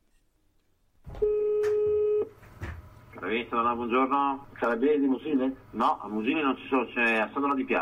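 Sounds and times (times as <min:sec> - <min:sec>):
telephone tone of a call to emergency number 113: 0:01.2 - 0:02.3
speech: 0:03.3 - 0:07.8.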